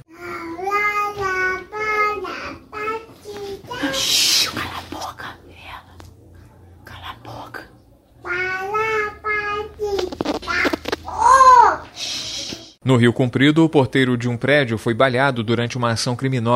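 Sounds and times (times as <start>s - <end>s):
young child singing in a high wavering voice: 0.1s - 4.3s, 8.2s - 12.0s
speech: 12.9s - 16.5s.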